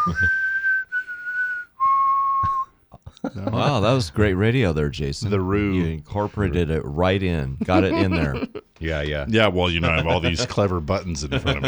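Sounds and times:
speech: 0:00.0 - 0:00.5, 0:03.4 - 0:11.6
short clear whistled melody of long held notes: 0:00.0 - 0:02.8
laughter: 0:03.0 - 0:04.2, 0:07.6 - 0:08.6, 0:09.6 - 0:11.6.

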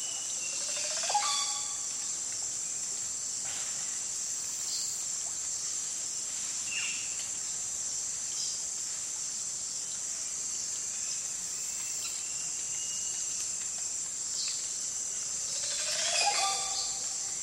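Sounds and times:
Oropendola calling in the Amazon rainforest: 0:00.1 - 0:01.9, 0:15.6 - 0:17.3.

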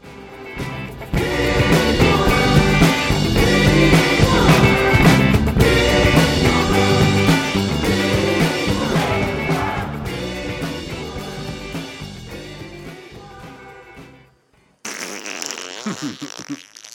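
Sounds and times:
music: 0:00.0 - 0:14.8
fake fart sound made with the mouth: 0:14.9 - 0:16.9.

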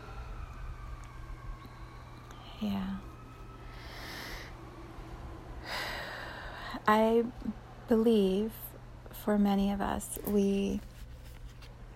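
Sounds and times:
emergency vehicle siren wailing as it goes by: 0:00.0 - 0:06.5
low rumble of traffic: 0:00.0 - 0:11.9
speech: 0:02.6 - 0:03.1, 0:06.9 - 0:08.6, 0:09.2 - 0:10.9.

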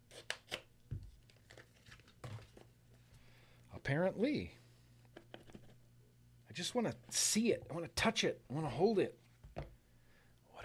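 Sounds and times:
package being torn open: 0:00.1 - 0:02.6
wrapping crinkling and crackling: 0:01.1 - 0:02.7
speech: 0:03.9 - 0:04.6, 0:06.6 - 0:09.2.

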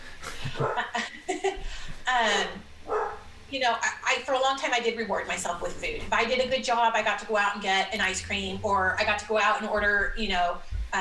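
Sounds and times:
speech: 0:00.6 - 0:00.9, 0:02.1 - 0:02.7, 0:03.5 - 0:10.9
hound dog barking, baying and yelping: 0:02.8 - 0:03.3.

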